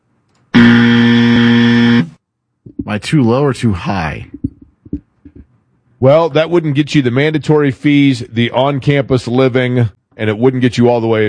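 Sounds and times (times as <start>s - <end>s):
game show buzzer: 0.6s - 2.2s
speech: 2.9s - 4.4s, 6.0s - 11.2s.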